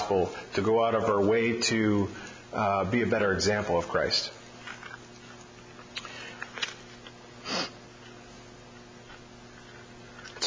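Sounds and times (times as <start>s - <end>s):
speech: 0.1s - 4.4s
person sniffling with a congested nose from a cold: 7.4s - 7.8s.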